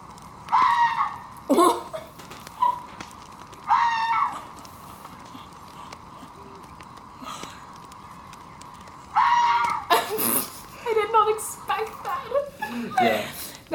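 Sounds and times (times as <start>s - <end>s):
faint hum: 0.0s - 13.7s
fox screams: 0.4s - 2.9s, 3.6s - 4.6s, 9.0s - 10.0s
laughter: 12.2s - 13.6s.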